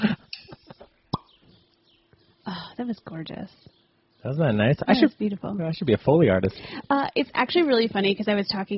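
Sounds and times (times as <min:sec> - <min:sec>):
cork popping from a wine bottle: 0:01.1 - 0:01.4
speech: 0:02.8 - 0:08.7.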